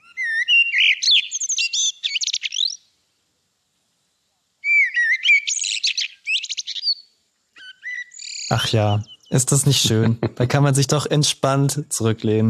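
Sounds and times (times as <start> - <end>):
common blackbird singing: 0.0 - 2.9, 4.6 - 10.7
laughter: 8.5 - 12.2
speech: 8.5 - 12.4.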